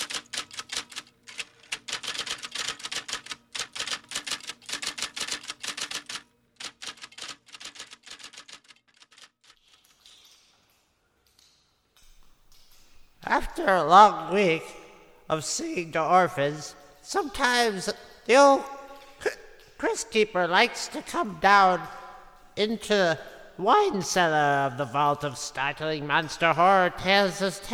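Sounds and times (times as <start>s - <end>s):
mechanical typewriter keystrokes: 0.0s - 9.8s
speech: 13.3s - 18.7s, 19.8s - 22.0s, 22.6s - 27.7s.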